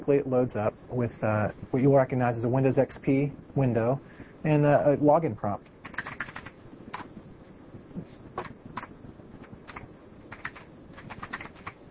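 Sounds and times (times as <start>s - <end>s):
speech: 0.0s - 5.7s
computer keyboard keys clattering as a password is typed: 5.8s - 7.1s, 8.4s - 11.8s.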